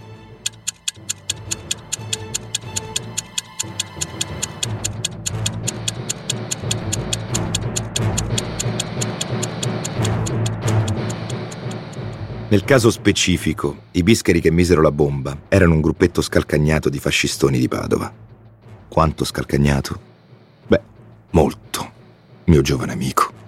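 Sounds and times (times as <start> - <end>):
rapid ticking of a timer counting down: 0.3 - 12.7
speech: 12.5 - 18.3, 18.9 - 20.1, 20.7 - 21.9, 22.5 - 23.2.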